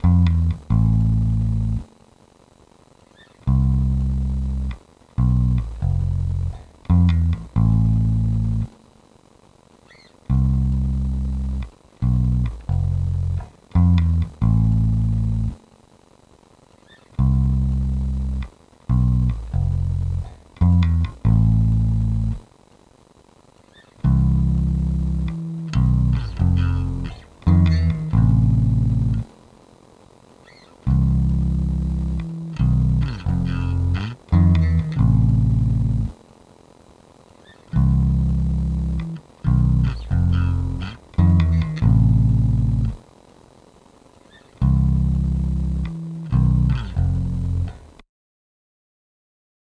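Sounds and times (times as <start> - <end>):
bass: 0.0 - 1.9, 3.4 - 8.8, 10.2 - 15.6, 17.1 - 22.4, 24.0 - 29.3, 30.8 - 36.2, 37.7 - 43.0, 44.6 - 48.0.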